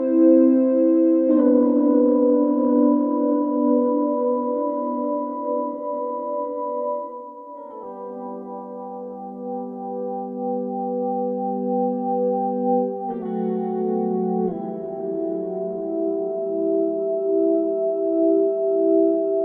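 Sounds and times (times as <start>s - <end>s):
Ebow electric guitar effect without reverb: 0.2s - 19.4s.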